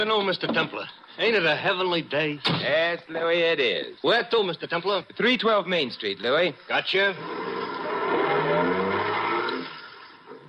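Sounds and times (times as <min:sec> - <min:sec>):
speech: 0:00.0 - 0:07.5
taxi engine revving as the car pulls away: 0:07.1 - 0:09.8.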